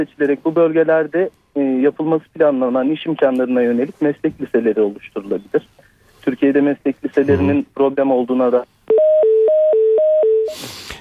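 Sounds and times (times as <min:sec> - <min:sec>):
speech: 0:00.0 - 0:08.8
telephone line tone after a dropped call: 0:08.9 - 0:10.6.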